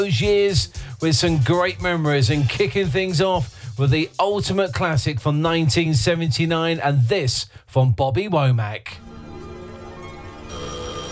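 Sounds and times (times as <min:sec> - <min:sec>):
speech: 0:00.0 - 0:09.1
telephone ringing with electronic trill: 0:10.3 - 0:11.1.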